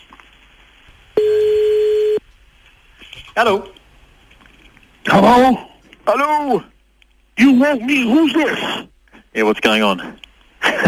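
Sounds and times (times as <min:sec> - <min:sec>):
telephone ringback tone of an outgoing call: 0:01.2 - 0:02.2
speech: 0:03.4 - 0:03.8, 0:05.1 - 0:06.7, 0:07.4 - 0:10.8.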